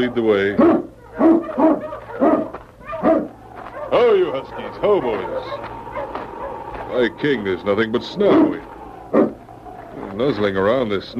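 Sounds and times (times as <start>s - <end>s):
speech: 0.0s - 1.8s, 4.2s - 5.7s, 6.9s - 8.7s, 10.2s - 11.1s
large dog barking near rocks in snow: 0.4s - 6.9s, 8.1s - 9.5s.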